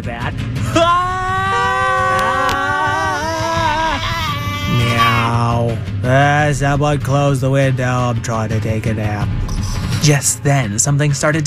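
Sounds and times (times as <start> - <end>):
people screaming in overlapping wails: 0.7 - 5.5
speech: 6.0 - 11.4.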